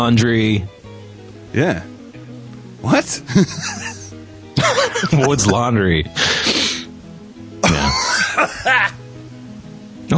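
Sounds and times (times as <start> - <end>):
speech: 0.0 - 0.8, 1.5 - 1.9, 2.8 - 4.0, 4.7 - 6.5, 7.9 - 9.0
laughter: 3.2 - 6.7, 7.6 - 9.0
throat clearing to hack up phlegm: 7.6 - 8.2
person harshly wet coughing up loosened phlegm: 7.6 - 8.4.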